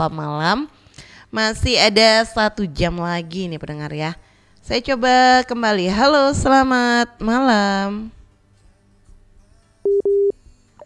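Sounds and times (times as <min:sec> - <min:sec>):
speech: 0:00.0 - 0:08.2
telephone busy signal after a call is cut off: 0:09.9 - 0:10.8.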